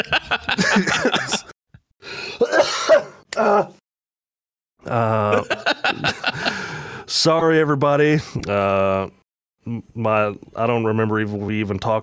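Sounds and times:
laughter: 0.0s - 1.5s, 4.9s - 6.7s
harsh throaty coughing fit with throat-clearing: 0.8s - 1.5s, 2.3s - 3.6s
speech: 7.2s - 12.0s.

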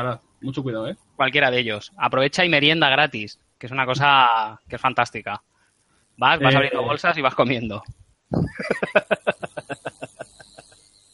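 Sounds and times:
speech: 0.0s - 5.5s, 6.2s - 9.2s
faulty microphone emitting cricket-like chirps: 7.8s - 10.8s
laughter: 8.5s - 10.7s.

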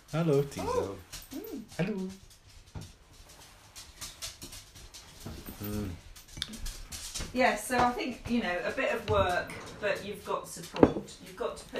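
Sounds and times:
faint room noise: 0.0s - 11.7s
speech: 0.1s - 2.9s, 5.2s - 6.7s, 7.3s - 11.7s
dog whimpering: 0.5s - 1.8s.

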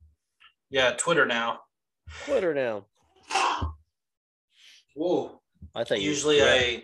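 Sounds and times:
speech: 0.7s - 3.4s, 5.0s - 6.8s
sneeze: 3.3s - 3.8s.

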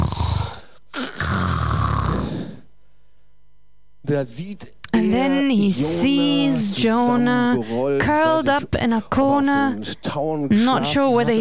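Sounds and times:
loud raspy snoring: 0.0s - 2.6s
speech: 4.1s - 11.3s.

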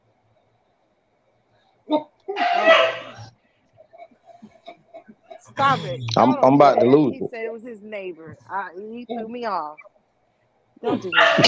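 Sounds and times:
faint scattered sounds: 0.0s - 11.4s
speech: 1.9s - 2.1s, 5.6s - 9.9s, 10.8s - 11.4s
neighbor's dog barking: 2.4s - 3.3s, 11.1s - 11.4s.

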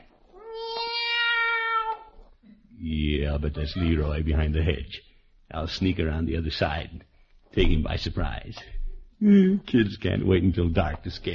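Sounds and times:
boy imitating a long cat meow: 0.4s - 2.1s
speech: 2.8s - 11.3s.

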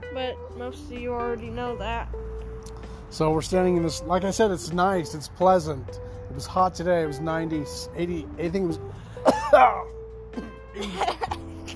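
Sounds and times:
speech: 0.2s - 9.8s
person coughing: 9.2s - 11.7s.

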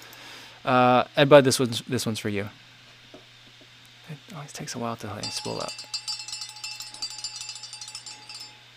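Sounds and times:
low constant hum: 0.0s - 8.7s
speech: 0.6s - 2.8s, 4.1s - 5.9s
cowbell clanking: 5.2s - 8.7s.

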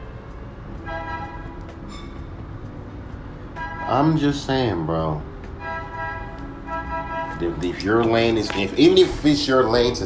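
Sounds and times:
steady low rumble of traffic: 0.0s - 10.0s
coffee truck horn tooting outside: 0.8s - 2.2s, 3.5s - 4.5s, 5.6s - 8.6s
speech: 3.9s - 5.3s, 7.4s - 10.0s.

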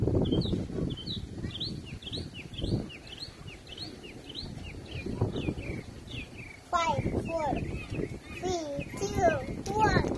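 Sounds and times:
many wild birds chirping and tweeting outdoors: 0.0s - 10.1s
children's voices: 6.6s - 10.1s.

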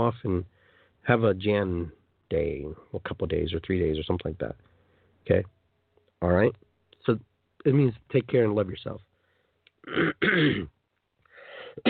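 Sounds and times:
speech: 0.0s - 5.6s, 6.2s - 9.1s, 9.8s - 10.8s
harsh coughs: 9.8s - 10.8s, 11.6s - 11.8s
throat clearing: 9.8s - 10.8s.

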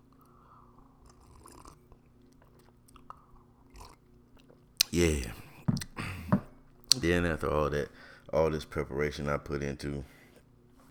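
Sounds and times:
person sipping coffee: 0.0s - 6.5s
low steady hum: 0.0s - 10.8s
slurping bursts: 0.1s - 7.0s
speech: 4.9s - 5.4s, 7.0s - 10.2s.

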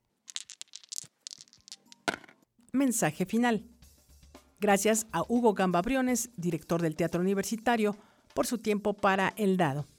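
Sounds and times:
dice tumbling across a hard surface: 0.2s - 2.4s
speech: 2.8s - 3.7s, 4.6s - 9.9s.

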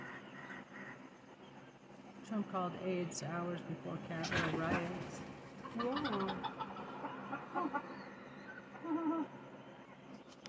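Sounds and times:
low hum: 0.0s - 10.4s
speech: 2.3s - 6.7s, 7.3s - 7.9s
chicken clucking on top of a pit bull's head: 4.2s - 7.8s.

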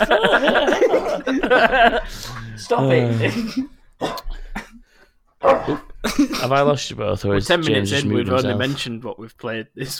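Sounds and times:
speech: 0.0s - 0.6s, 1.6s - 4.2s, 5.4s - 9.9s
laughter: 0.0s - 3.8s, 5.6s - 6.7s
excited dog barking: 5.4s - 5.9s.

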